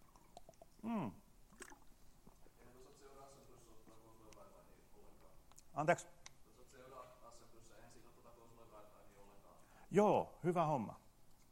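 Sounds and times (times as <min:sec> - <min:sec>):
person sipping water with wet clicks and gulping swallows: 0:00.0 - 0:02.5
speech: 0:05.8 - 0:06.2, 0:09.9 - 0:11.0.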